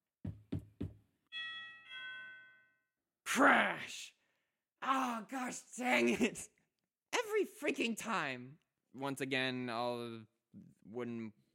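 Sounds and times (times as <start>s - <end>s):
firm knocking on a wooden door: 0.2s - 1.0s
two-note doorbell chime: 1.3s - 2.9s
speech: 3.4s - 4.1s, 4.8s - 6.6s, 7.4s - 11.5s.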